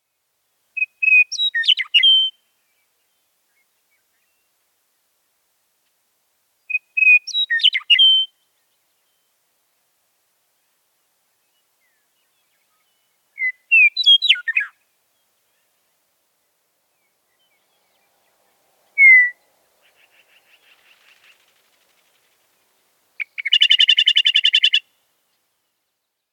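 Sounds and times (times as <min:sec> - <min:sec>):
Western Meadowlark song and calls: 0:00.0 - 0:04.6, 0:06.6 - 0:09.4, 0:11.4 - 0:16.1, 0:16.9 - 0:21.5, 0:22.8 - 0:26.3.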